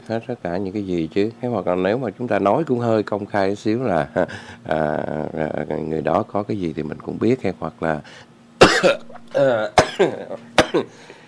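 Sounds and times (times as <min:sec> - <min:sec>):
speech: 0:00.0 - 0:11.2
voiced speech-like sounds: 0:04.1 - 0:06.1
person coughing hard: 0:08.6 - 0:11.2.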